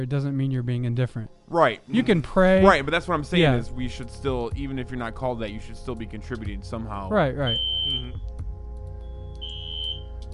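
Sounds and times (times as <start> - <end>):
speech: 0.0 - 8.3
smoke alarm high-pitched tone: 7.4 - 8.2, 9.0 - 10.2.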